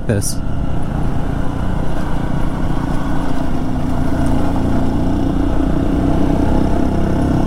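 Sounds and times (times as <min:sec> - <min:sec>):
two dual-sport motorcycle engines droning while riding a road in the Pisgah Ranger District: 0:00.0 - 0:07.4
speech: 0:00.1 - 0:00.7.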